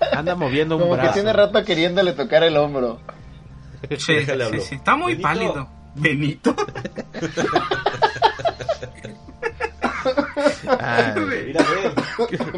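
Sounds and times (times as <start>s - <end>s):
people laughing and chuckling: 0.0s - 0.4s, 6.4s - 12.5s
speech: 0.2s - 3.2s, 3.8s - 9.2s, 10.0s - 12.5s
person coughing after laughing: 9.8s - 12.5s.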